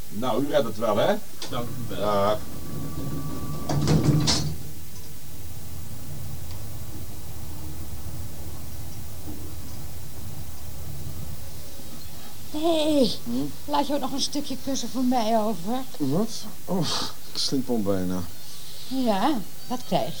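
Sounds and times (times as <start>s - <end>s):
low hum of elevator machinery: 0.0s - 20.1s
speech: 0.1s - 3.2s, 12.6s - 20.1s
elevator doors sliding shut: 0.8s - 13.4s.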